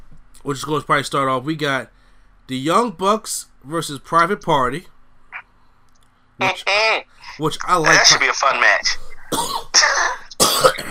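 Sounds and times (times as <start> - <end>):
speech: 0.4 - 4.9, 6.4 - 10.9
harsh raspy coughs: 9.3 - 10.9.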